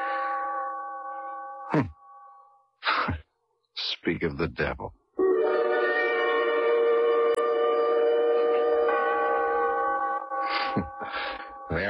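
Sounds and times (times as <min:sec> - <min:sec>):
clock chime ringing with a long steady hum: 0:00.0 - 0:02.7, 0:05.2 - 0:11.8
speech: 0:01.7 - 0:02.0, 0:04.0 - 0:05.0, 0:10.8 - 0:11.8.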